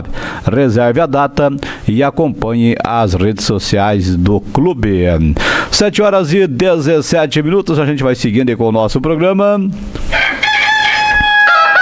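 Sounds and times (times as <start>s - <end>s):
speech: 0.4s - 10.2s
rooster crowing: 10.1s - 11.8s.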